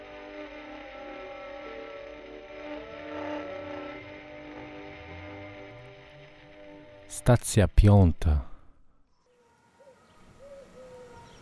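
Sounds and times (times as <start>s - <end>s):
speech: 7.2s - 8.5s
pigeons cooing: 9.8s - 11.4s.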